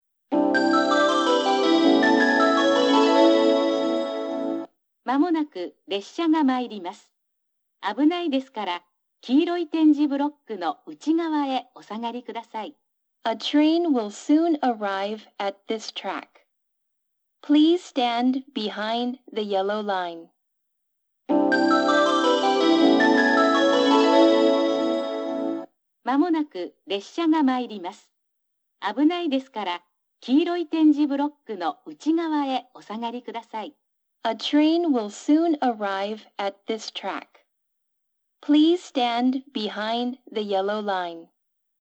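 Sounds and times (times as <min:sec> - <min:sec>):
train approach melody for a down train at Yufuin: 0:00.3 - 0:04.7, 0:21.3 - 0:25.6
female station announcement at Yufuin: 0:05.1 - 0:07.1, 0:07.8 - 0:12.7, 0:13.3 - 0:16.4, 0:17.4 - 0:20.3, 0:26.1 - 0:28.1, 0:28.8 - 0:33.7, 0:34.3 - 0:37.4, 0:38.4 - 0:41.3.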